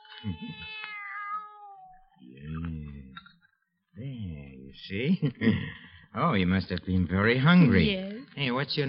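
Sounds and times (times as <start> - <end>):
young kitten meowing: 0.0 - 2.1
speech: 0.2 - 0.9, 4.8 - 8.8.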